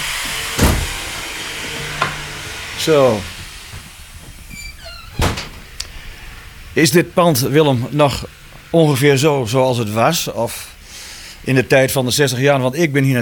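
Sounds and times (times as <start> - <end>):
short creaking front door hinge: 0.0 - 6.6
steady hiss: 0.0 - 13.2
front door latch clunk: 0.3 - 5.9
speech: 2.8 - 3.3, 6.8 - 10.7, 11.4 - 13.2.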